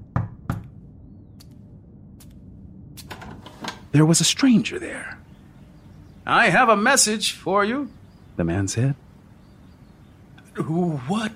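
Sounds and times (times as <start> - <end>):
knocking on a door: 0.1 - 0.7
speech: 3.9 - 5.2, 6.3 - 9.0, 10.6 - 11.3.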